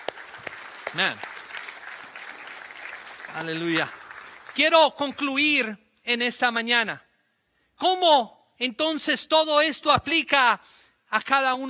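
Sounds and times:
audience applauding: 0.0s - 5.4s
speech: 0.9s - 1.3s, 3.3s - 4.0s, 4.6s - 7.0s, 7.8s - 11.6s.

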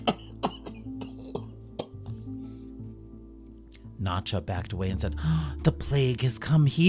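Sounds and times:
person coughing: 0.0s - 2.1s
speech: 4.1s - 6.8s.

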